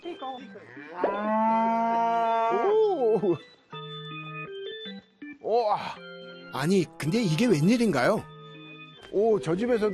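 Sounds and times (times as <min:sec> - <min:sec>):
speech: 0:00.3 - 0:01.4, 0:03.2 - 0:03.6, 0:05.8 - 0:08.3, 0:09.1 - 0:09.9
milked dairy cow mooing in a village: 0:00.6 - 0:02.7.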